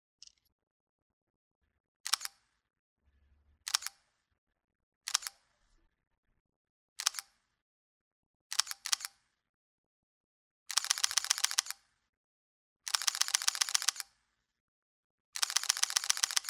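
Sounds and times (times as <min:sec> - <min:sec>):
Olympus PEN camera: 0:02.0 - 0:02.4, 0:03.7 - 0:04.0, 0:05.1 - 0:05.4, 0:07.0 - 0:07.4, 0:08.5 - 0:09.3, 0:10.7 - 0:11.9, 0:12.9 - 0:14.2, 0:15.4 - 0:16.4.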